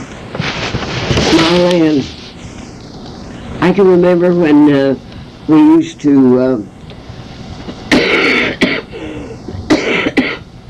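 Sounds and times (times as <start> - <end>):
speech: 1.5 - 2.2, 3.6 - 6.8
coughing and throat clearing: 7.9 - 10.5.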